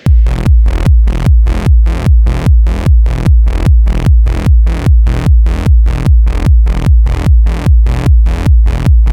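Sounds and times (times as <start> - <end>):
heavily compressed electronic drum loop: 0.0 - 9.1.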